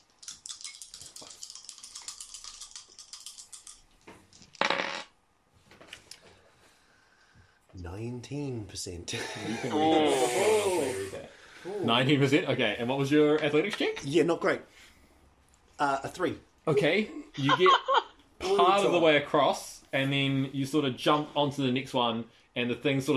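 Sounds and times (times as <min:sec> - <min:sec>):
percentile dice rolled during a tabletop role-playing game: 0:00.2 - 0:05.0
speech: 0:07.8 - 0:14.8, 0:15.8 - 0:17.9, 0:18.6 - 0:23.1.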